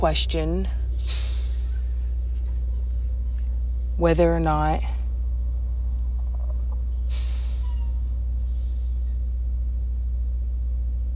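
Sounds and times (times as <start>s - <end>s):
speech: 0.0s - 1.3s, 4.0s - 5.0s
large bus engine rumble: 0.0s - 11.1s
bus air brake hiss: 1.0s - 1.8s, 7.1s - 7.7s, 8.4s - 9.0s.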